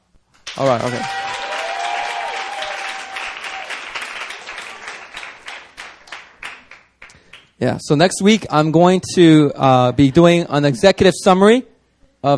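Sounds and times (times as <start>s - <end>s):
audience applause: 0.5s - 7.5s
speech: 0.6s - 1.2s, 7.6s - 12.3s.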